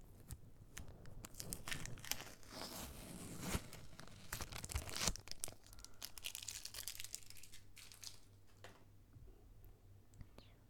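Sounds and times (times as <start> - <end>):
wrapper being torn open, crinkling and tearing: 0.1 - 8.6.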